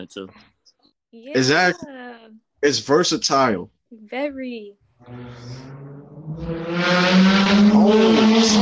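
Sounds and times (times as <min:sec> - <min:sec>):
speech: 0:00.0 - 0:08.6
car engine revving as the car speeds past outside: 0:05.0 - 0:08.6.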